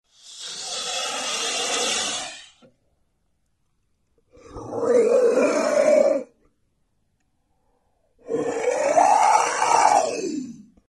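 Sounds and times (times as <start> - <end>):
vampire sound: 0.1 - 2.7, 4.3 - 6.4, 8.2 - 10.8.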